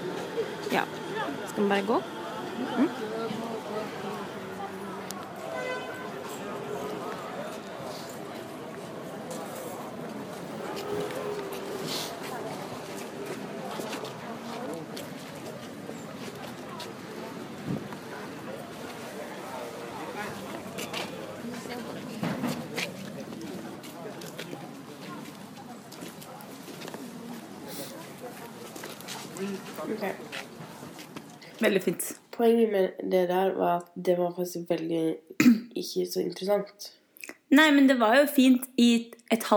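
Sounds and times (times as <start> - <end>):
murmur of many voices at an outdoor flea market in Paris: 0.0 - 32.2
speech: 0.7 - 4.4, 32.5 - 39.5
footsteps: 5.2 - 18.1, 20.3 - 31.4.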